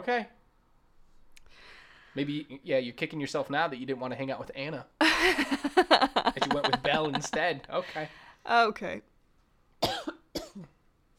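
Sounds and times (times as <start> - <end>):
speech: 0.0 - 0.4, 2.1 - 9.1
laughter: 5.0 - 7.9
woman coughing: 9.8 - 10.8.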